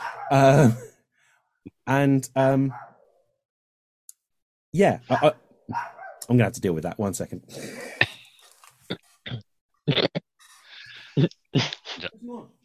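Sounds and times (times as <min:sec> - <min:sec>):
dog barking: 0:00.0 - 0:00.4, 0:02.7 - 0:03.2, 0:05.1 - 0:06.2
speech: 0:00.3 - 0:00.8, 0:01.9 - 0:02.9, 0:04.7 - 0:08.0, 0:11.2 - 0:12.6.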